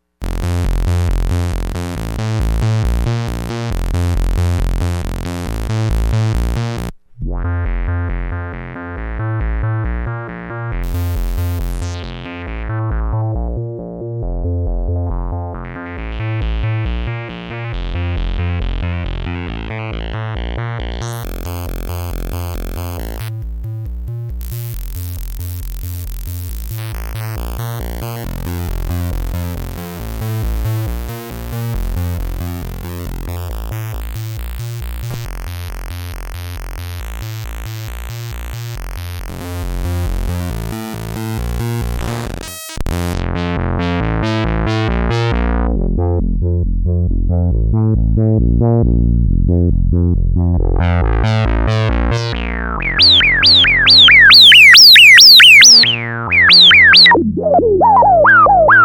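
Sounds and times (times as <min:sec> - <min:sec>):
bass sequence: 0:00.0 - 0:58.8
synths: 0:51.6 - 0:58.8.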